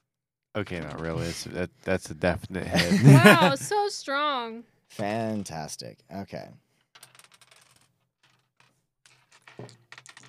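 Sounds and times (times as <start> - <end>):
speech: 0.6 - 6.6, 9.6 - 9.8
laughter: 2.6 - 3.8
dice rattling and clattering in a hand: 6.9 - 10.2.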